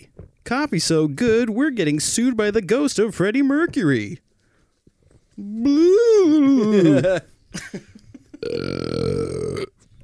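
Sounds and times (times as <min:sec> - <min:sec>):
speech: 0:00.5 - 0:04.3, 0:05.4 - 0:08.8
long loud rumbling wet burp: 0:08.4 - 0:09.8.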